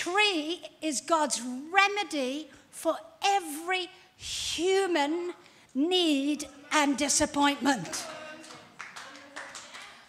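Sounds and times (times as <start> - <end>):
speech: 0.0 - 8.2
crowd clapping during a sermon: 7.8 - 10.0.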